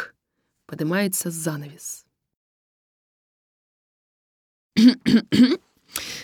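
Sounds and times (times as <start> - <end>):
speech: 0.7 - 2.0, 4.8 - 6.2
man clearing throat in gruff rasps: 4.8 - 5.6.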